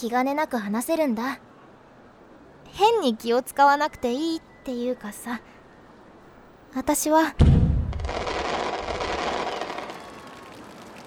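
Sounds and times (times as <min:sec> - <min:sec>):
speech: 0:00.0 - 0:01.5, 0:02.7 - 0:05.6, 0:06.7 - 0:08.3
fireworks crackling and rumbling: 0:07.7 - 0:11.0.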